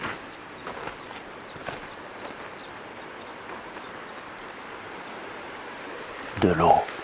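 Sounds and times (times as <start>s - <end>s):
bird chirping outdoors: 0.1s - 4.7s
speech: 6.4s - 6.9s.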